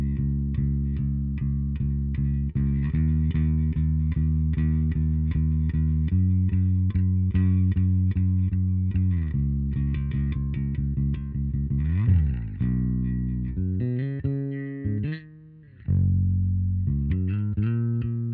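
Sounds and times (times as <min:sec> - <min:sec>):
new bass sound: 0:00.0 - 0:18.3.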